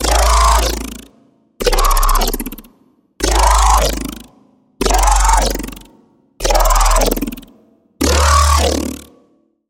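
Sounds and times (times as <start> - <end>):
Serum 2 synthesized growl scream: 0.0 - 1.0, 1.6 - 2.6, 3.2 - 4.2, 4.8 - 5.8, 6.4 - 7.4, 8.0 - 9.1.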